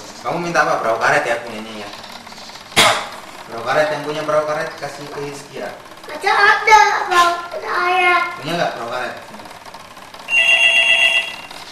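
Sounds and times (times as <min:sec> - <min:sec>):
speech: 0:00.2 - 0:02.0, 0:03.5 - 0:09.3
telephone ringing with a trilling electronic burst: 0:10.1 - 0:11.7.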